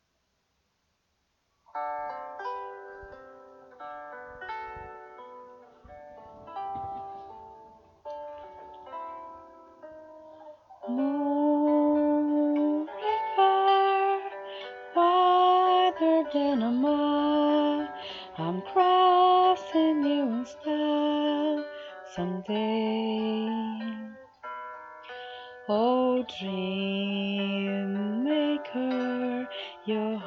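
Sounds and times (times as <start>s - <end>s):
person singing karaoke with a Brazilian accent: 10.8s - 24.3s, 25.7s - 30.2s.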